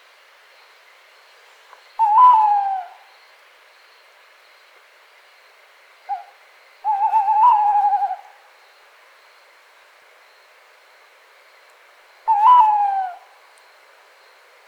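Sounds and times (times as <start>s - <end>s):
tawny owl hooting: 2.0s - 3.1s, 6.1s - 8.4s, 12.3s - 13.3s.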